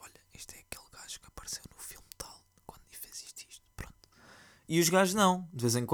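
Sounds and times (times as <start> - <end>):
person whispering and murmuring quietly: 0.0 - 4.0
speech: 4.7 - 5.9.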